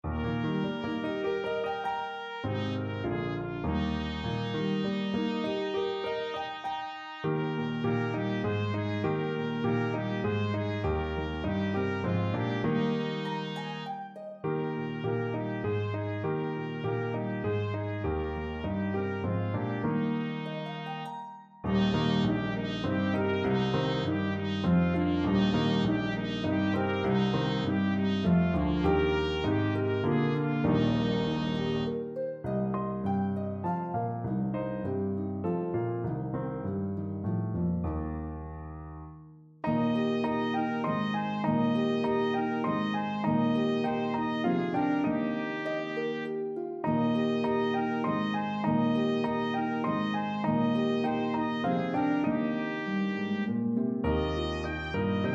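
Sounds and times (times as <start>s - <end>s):
B-flat trumpet: 0.0s - 32.1s, 39.6s - 55.3s
harp: 0.0s - 36.3s, 39.6s - 55.3s
piano: 0.0s - 55.3s.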